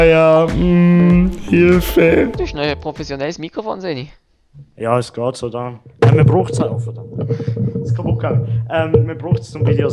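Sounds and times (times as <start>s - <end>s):
speech: 0.0s - 9.9s
microphone stand falling over with a thud: 6.0s - 7.7s.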